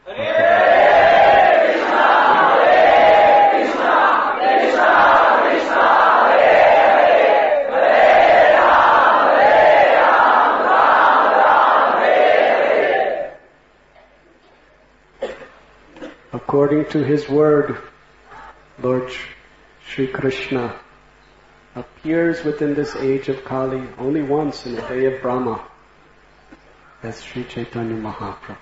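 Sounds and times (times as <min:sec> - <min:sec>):
congregation chanting loudly in Sankirtan style: 0:00.0 - 0:13.5
speech: 0:16.6 - 0:17.9, 0:18.8 - 0:20.8, 0:21.8 - 0:25.7, 0:27.0 - 0:28.5.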